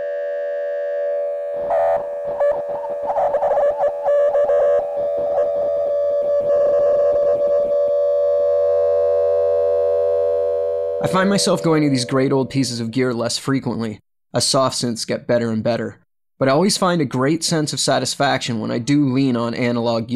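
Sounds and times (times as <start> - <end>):
distorted synthesized dial tone: 1.1 - 12.7
speech: 11.0 - 20.1.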